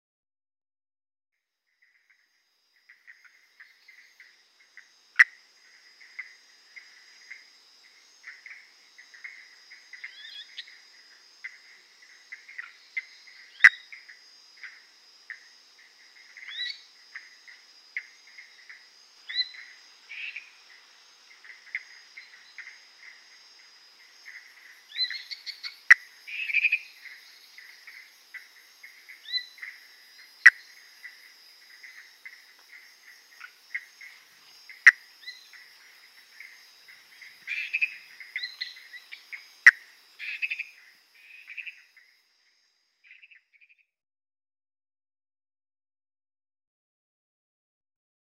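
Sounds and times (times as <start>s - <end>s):
Phyllomedusa tomopterna calling: 1.8s - 43.9s.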